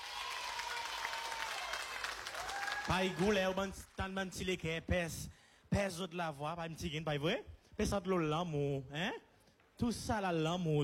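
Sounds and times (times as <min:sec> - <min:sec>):
audience applause: 0:00.0 - 0:03.7
speech: 0:02.9 - 0:10.8.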